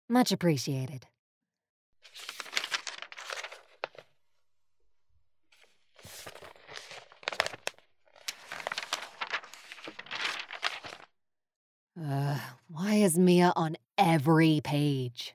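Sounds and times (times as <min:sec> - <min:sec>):
speech: 0:00.1 - 0:01.1, 0:12.0 - 0:15.3
newspaper classified section rustling and crinkling: 0:02.0 - 0:04.2, 0:05.5 - 0:11.1.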